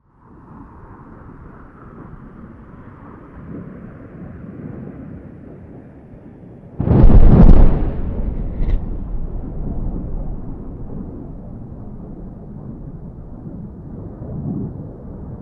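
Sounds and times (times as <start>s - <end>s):
Mirage 2000 jet aircraft bombardment: 6.8s - 14.5s.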